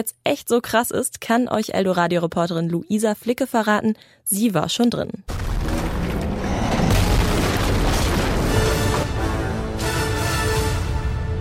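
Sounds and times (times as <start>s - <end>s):
speech: 0.0s - 5.4s
action film explosions with deep heavy booms: 5.3s - 9.5s
dramatic musical score: 5.9s - 11.3s.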